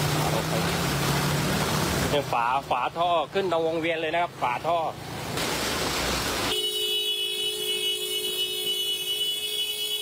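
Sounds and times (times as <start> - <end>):
rushing splashing water: 0.0 - 10.0
traffic rumbling: 0.0 - 10.0
speech: 2.1 - 5.4
car horn honking in flooded traffic: 6.5 - 10.0.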